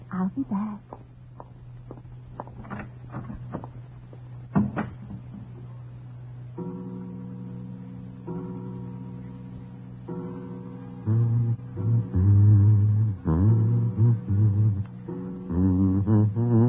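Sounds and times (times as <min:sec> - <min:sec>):
low steady hum: 0:00.0 - 0:16.6
speech: 0:00.2 - 0:01.1
unlatched door opening as someone walks in: 0:02.4 - 0:03.9.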